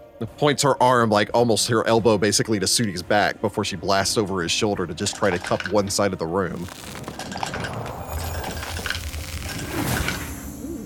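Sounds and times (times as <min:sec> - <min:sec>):
speech: 0:00.2 - 0:07.0
many dice rolling and clacking: 0:05.0 - 0:05.9, 0:06.6 - 0:09.6.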